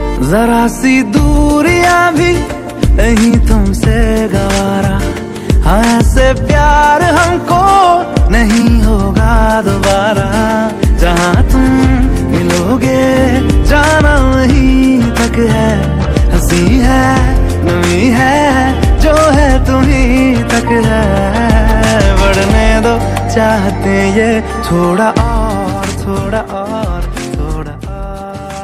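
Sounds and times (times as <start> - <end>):
romantic Hindi music tone: 0.0 - 28.6.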